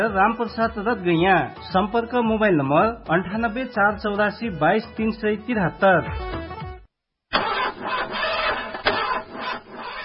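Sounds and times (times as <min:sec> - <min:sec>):
speech: 0:00.0 - 0:06.6
car engine cranking without catching because of a weak battery: 0:07.3 - 0:10.0.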